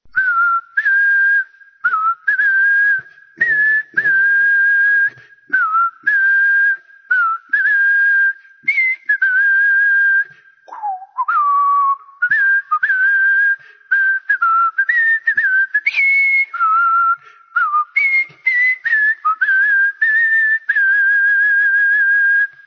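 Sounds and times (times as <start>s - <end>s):
person whistling a song melody: 0.1s - 22.6s.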